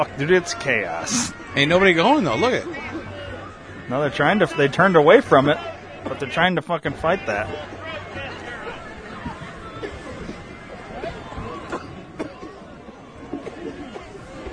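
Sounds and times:
speech: 0.0 - 3.0, 3.9 - 8.2
crowd murmuring and chattering at the Capitol: 0.0 - 14.5
people coughing in a crowd: 9.6 - 14.5.

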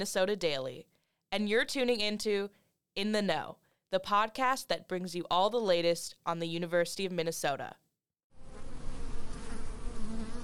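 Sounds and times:
speech: 0.0 - 7.8
dense drone of many bees buzzing together: 8.4 - 10.4.

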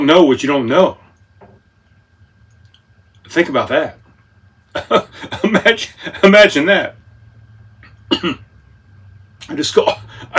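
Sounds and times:
speech: 0.0 - 1.0, 3.3 - 4.0, 4.7 - 7.0, 8.1 - 8.4, 9.4 - 10.3
coughing and throat clearing after choking on Parmesan crisps: 4.7 - 5.7, 7.8 - 8.5, 9.9 - 10.3.

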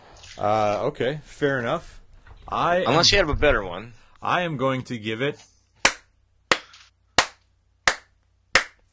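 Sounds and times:
speech: 0.4 - 5.5
sharp hand claps: 5.8 - 8.8.

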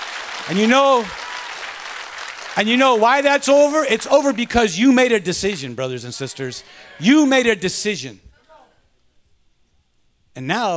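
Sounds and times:
audience clapping hands: 0.0 - 7.5
speech: 0.5 - 1.2, 2.6 - 8.3, 10.4 - 10.7.

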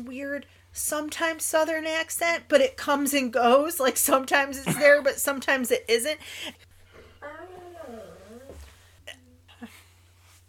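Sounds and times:
speech: 0.0 - 8.0
female dog whimpering and crying: 7.2 - 8.7.

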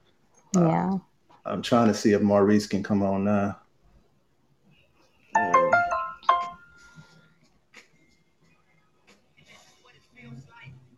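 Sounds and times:
speech: 0.5 - 3.6
phone notification alert melodic chime: 5.4 - 6.8.

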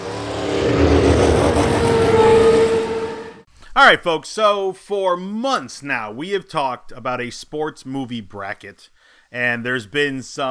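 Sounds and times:
roaring car engine sound effect: 0.0 - 3.5
speech: 3.8 - 10.4.

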